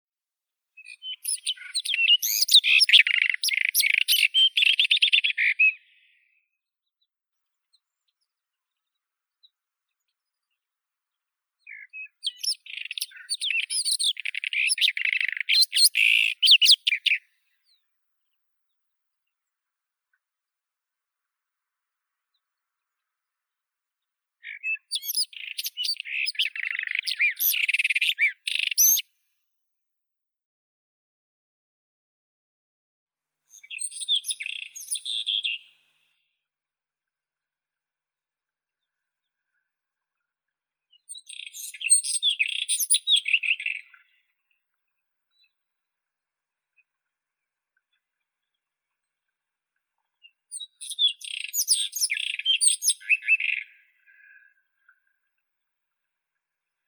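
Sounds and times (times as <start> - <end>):
white-throated robin Irania gutturalis: 0.8 - 6.4, 11.6 - 17.8, 24.4 - 29.0, 33.5 - 35.8, 40.9 - 44.2, 50.2 - 54.5.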